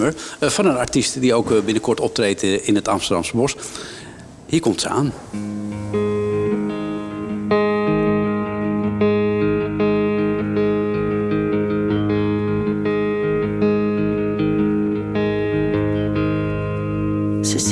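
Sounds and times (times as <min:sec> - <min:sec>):
speech: 0:00.0 - 0:05.7
instrumental intro of a Dutch-language song: 0:05.3 - 0:17.6
sustained effects-laden guitar chords: 0:05.3 - 0:17.6.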